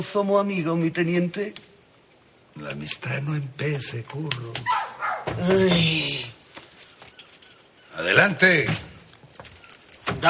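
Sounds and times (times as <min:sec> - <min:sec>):
speech: 0:00.0 - 0:01.7, 0:02.6 - 0:06.4, 0:08.0 - 0:08.9
dog barking and yelping: 0:04.6 - 0:05.4.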